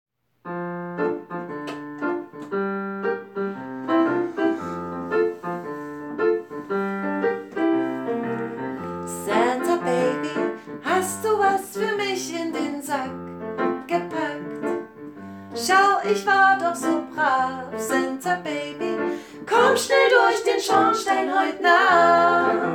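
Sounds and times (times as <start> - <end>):
piano: 0.2 - 22.7.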